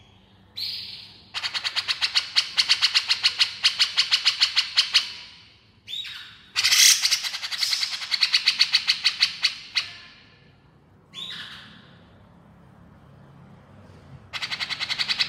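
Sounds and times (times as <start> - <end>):
female grey-cheeked bulbul giving harsh rapid chattering notes: 0.6 - 10.3, 14.3 - 15.2.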